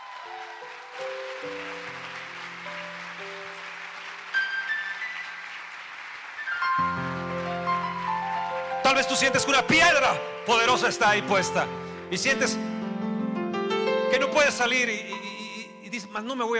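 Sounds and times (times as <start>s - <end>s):
church audience applauding: 0.0s - 11.9s
speech: 0.2s - 1.7s, 9.0s - 12.8s, 14.1s - 15.3s, 15.9s - 16.5s.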